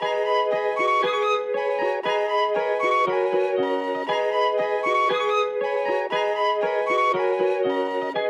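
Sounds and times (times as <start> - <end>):
trap melody at 118 BPM in G sharp minor: 0.0 - 8.2.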